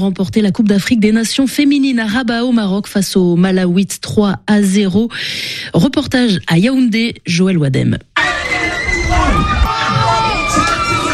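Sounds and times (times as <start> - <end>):
speech: 0.0 - 8.3
large crowd shouting and cheering joyfully: 8.2 - 11.1.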